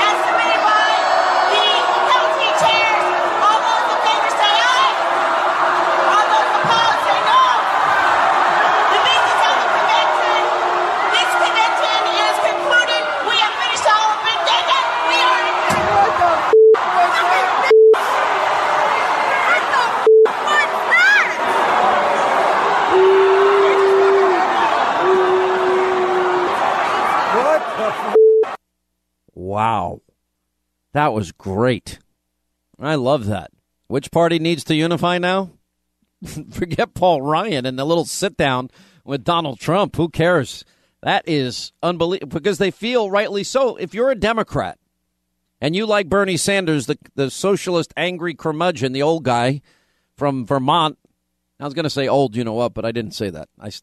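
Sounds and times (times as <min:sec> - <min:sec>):
large angry convention crowd shouting and cursing: 0:00.0 - 0:28.6
short electronic beeps: 0:17.7 - 0:18.0, 0:20.1 - 0:20.3, 0:28.2 - 0:28.6
speech: 0:31.0 - 0:32.0, 0:32.9 - 0:35.6, 0:36.2 - 0:44.8, 0:45.6 - 0:51.0, 0:51.6 - 0:53.8.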